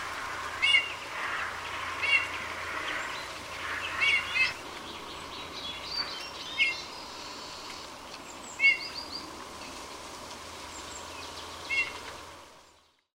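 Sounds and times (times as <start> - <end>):
quiet background hiss: 0.0 - 13.0
faint other bird sounds: 0.0 - 13.1
Eurasian bullfinch giving soft piping call notes: 0.6 - 9.2, 10.7 - 12.2.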